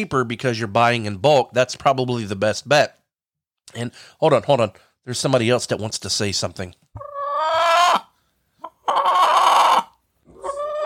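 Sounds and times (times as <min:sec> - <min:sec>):
speech: 0:00.0 - 0:03.0, 0:03.7 - 0:07.1
rooster clucking: 0:07.0 - 0:10.8.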